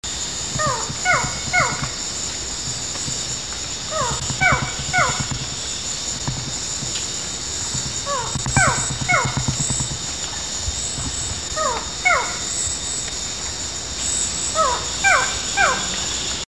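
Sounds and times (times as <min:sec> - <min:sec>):
lined forest falcon calling: 0:00.5 - 0:12.6, 0:14.5 - 0:16.1.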